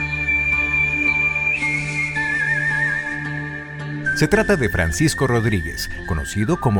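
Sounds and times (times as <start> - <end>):
human whistling a melody with vibrato: 0.0 - 6.7
steady instrumental backing music: 0.0 - 6.7
speech: 4.2 - 6.7.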